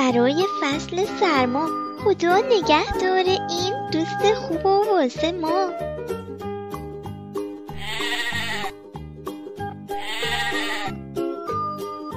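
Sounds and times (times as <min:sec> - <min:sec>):
bouncy steady musical backing of plucked notes: 0:00.0 - 0:12.1
speech: 0:00.1 - 0:05.9
loud quavering sheep bleats: 0:07.7 - 0:08.8, 0:09.9 - 0:11.0.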